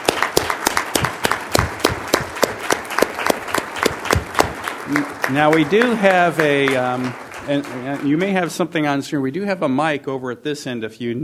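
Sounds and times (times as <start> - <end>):
room full of people applauding: 0.0 - 8.6
speech: 4.9 - 11.2.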